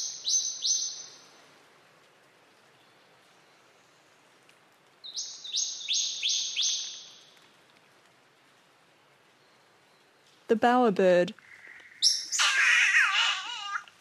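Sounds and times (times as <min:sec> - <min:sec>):
scrub bird singing piercing ringing notes: 0:00.0 - 0:01.2, 0:05.1 - 0:07.2, 0:11.8 - 0:12.9
faint hiss: 0:00.0 - 0:14.0
speech: 0:10.5 - 0:11.4.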